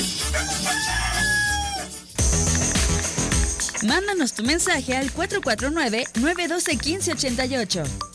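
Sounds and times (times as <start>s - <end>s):
loud bouncy music: 0.0s - 8.1s
rooster crowing: 0.2s - 2.0s
speech: 3.8s - 8.1s.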